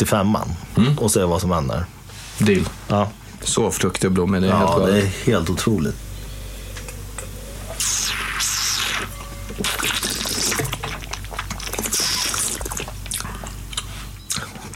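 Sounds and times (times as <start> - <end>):
speech: 0.0 - 6.1
person slurping sips of 2016 wine from a glass: 7.7 - 13.9.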